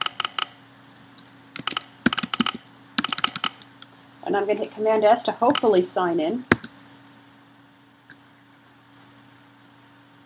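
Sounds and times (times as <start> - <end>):
computer keyboard key clicks from typing a username: 0.0 - 0.6, 1.6 - 3.9, 6.5 - 6.8
speech: 4.3 - 6.6.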